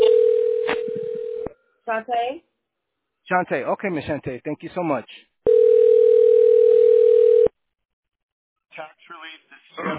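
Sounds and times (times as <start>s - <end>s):
electronic telephone ring tone during a call transfer: 0.0s - 1.5s, 5.5s - 7.5s
speech: 1.9s - 2.5s, 3.3s - 5.3s, 8.8s - 9.9s.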